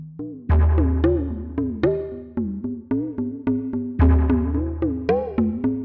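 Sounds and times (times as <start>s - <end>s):
drum in a cave: 0.5s - 2.2s, 4.0s - 5.8s.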